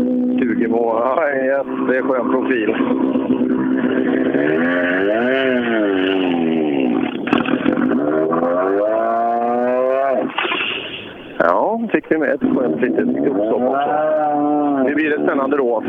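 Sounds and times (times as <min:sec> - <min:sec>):
speech: 0:00.0 - 0:03.2, 0:03.8 - 0:06.3, 0:11.4 - 0:15.8
race car engine roaring and passing during a race: 0:00.0 - 0:15.8.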